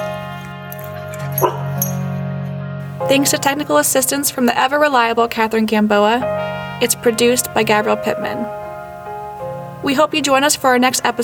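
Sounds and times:
dog giving a short yip or bark: 1.4 - 1.8
speech: 3.1 - 8.6, 9.8 - 11.2.

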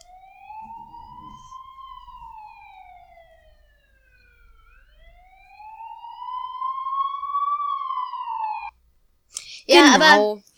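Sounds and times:
ambulance siren wailing: 0.0 - 8.7
speech: 9.7 - 10.5.

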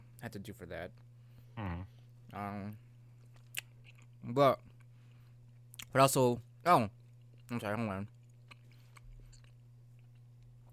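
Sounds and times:
steady low electrical hum: 0.0 - 10.7
speech: 0.2 - 2.9, 4.2 - 4.7, 5.9 - 8.2
person chewing food: 3.2 - 5.9, 7.0 - 7.5, 8.1 - 10.7.

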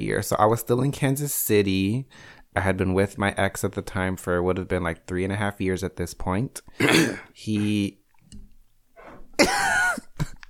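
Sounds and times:
speech: 0.0 - 8.0, 9.4 - 10.4
person clearing throat with a rasping burst and hack: 6.8 - 7.3, 9.4 - 10.2.

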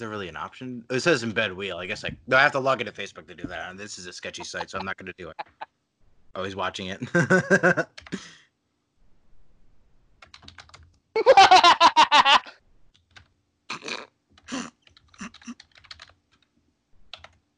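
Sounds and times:
speech: 0.0 - 5.7, 6.3 - 8.4, 11.2 - 11.7
laughter: 2.3 - 5.6, 6.9 - 8.3, 11.2 - 12.5
typing on a computer keyboard: 7.9 - 8.2, 10.2 - 11.0, 12.9 - 13.3, 14.4 - 16.5, 17.1 - 17.4.

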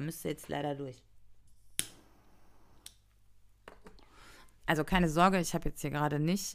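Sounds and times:
speech: 0.0 - 1.1, 4.7 - 6.5
jet flame lighter ignition click: 1.8 - 2.0.

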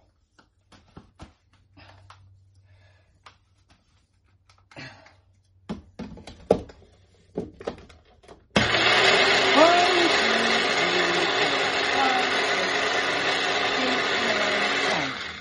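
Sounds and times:
food processor running on potato and olive oil: 8.6 - 15.3.

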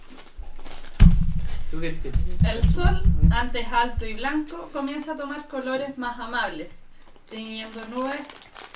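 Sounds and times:
horse hooves clip-clopping: 0.4 - 4.4
speech: 1.8 - 8.4.

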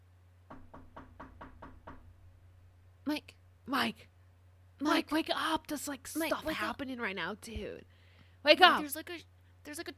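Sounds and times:
low steady hum: 0.0 - 9.9
knocking on a wooden bedroom door: 0.5 - 2.2
speech: 3.1 - 4.1, 4.8 - 9.9.

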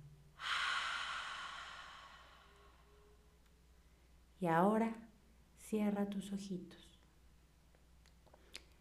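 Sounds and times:
deep exhale during a guided deep-breathing exercise: 0.4 - 3.2
speech: 4.4 - 6.9.

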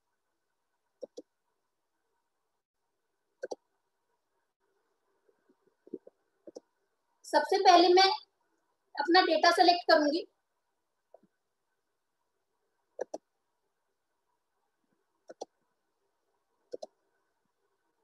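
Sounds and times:
computer mouse clicks: 1.0 - 1.3, 3.4 - 3.7, 5.8 - 6.7, 13.0 - 13.3, 15.2 - 15.6, 16.7 - 17.0
speech: 7.3 - 8.2, 9.0 - 10.3.

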